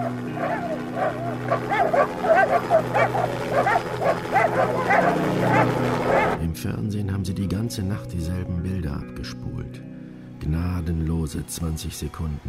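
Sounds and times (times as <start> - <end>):
several dogs barking and yelping: 0.0 - 6.4
speech: 6.6 - 12.4.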